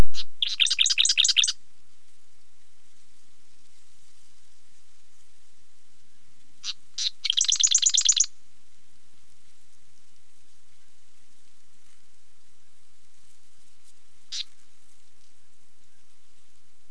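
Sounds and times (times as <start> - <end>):
marsh wren singing and calling in WA: 0.1 - 1.6, 6.6 - 8.3, 14.3 - 14.5.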